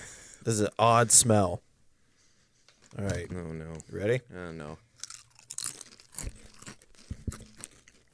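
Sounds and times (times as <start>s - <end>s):
speech: 0.4s - 1.7s, 2.9s - 4.9s
crunching and chewing on a crisp oily pita-chip-like snack: 4.9s - 8.1s.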